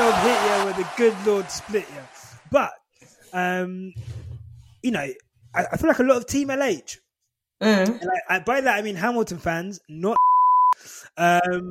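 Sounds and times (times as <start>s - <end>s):
speech: 0.2s - 4.2s, 4.8s - 7.0s, 7.6s - 11.7s
short loud steady censor bleep: 10.2s - 10.8s.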